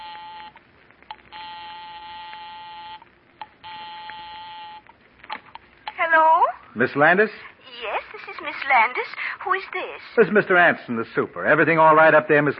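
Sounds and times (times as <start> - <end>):
long steady buzzing telephone ring on the line: 0.0 - 5.0
house telephone dialing electronic tones and clicks: 0.0 - 5.6
speech: 6.1 - 7.5, 8.1 - 12.5.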